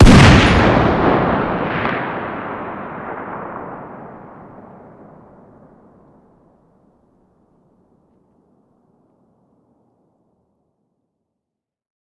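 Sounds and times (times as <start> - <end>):
distant 50 BMG rifle firing outdoors: 0.0 - 3.8.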